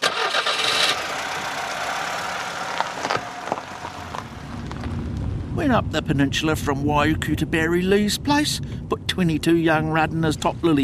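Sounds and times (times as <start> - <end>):
car engine cranking and starting then idling: 0.0 - 6.8
speech: 5.6 - 10.8.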